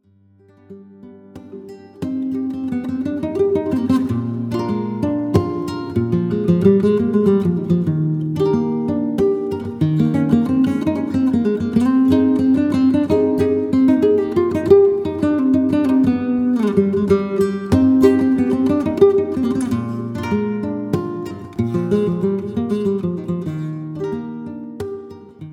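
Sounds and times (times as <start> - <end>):
guitar playing a solea: 0.0 - 25.5.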